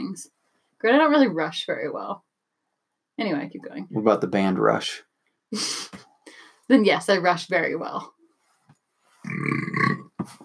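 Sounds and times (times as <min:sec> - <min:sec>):
speech: 0:00.2 - 0:02.3, 0:03.2 - 0:06.1, 0:06.7 - 0:08.2, 0:09.3 - 0:09.7
loud deep throaty burp: 0:09.2 - 0:10.2.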